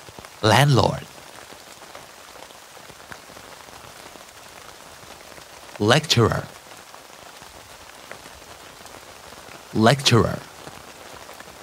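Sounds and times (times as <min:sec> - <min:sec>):
steady rain pattering on a tent: 0:00.0 - 0:11.6
speech: 0:00.4 - 0:01.1, 0:05.8 - 0:06.6, 0:09.8 - 0:10.5.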